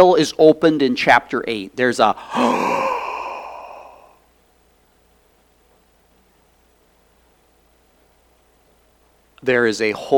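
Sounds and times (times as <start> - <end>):
speech: 0.0 - 3.0, 9.4 - 10.1
person imitating a gasp: 2.2 - 4.2.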